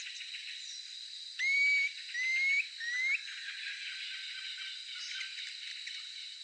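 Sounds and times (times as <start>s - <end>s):
Planalto tyrannulet Phyllomyias fasciatus calling three rising whistles: 1.4s - 3.2s.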